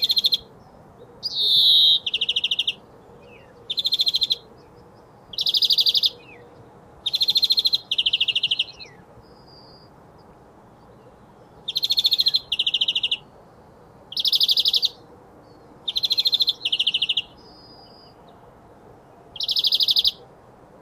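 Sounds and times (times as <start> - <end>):
European greenfinch Chloris chloris trilling in buzzy rattles: 0.0 - 0.5, 1.2 - 4.5, 5.3 - 6.4, 7.0 - 9.9, 11.7 - 13.3, 14.1 - 15.0, 15.9 - 18.1, 19.4 - 20.2.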